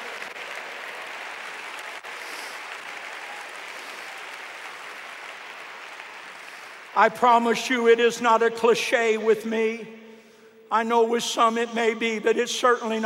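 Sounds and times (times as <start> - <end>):
large crowd clapping: 0.0 - 7.1
speech: 7.0 - 10.0, 10.7 - 13.0.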